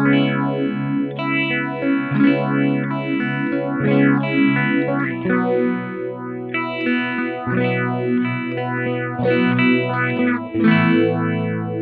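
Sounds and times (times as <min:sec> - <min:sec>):
clean Ross phaser effect: 0:00.2 - 0:11.7.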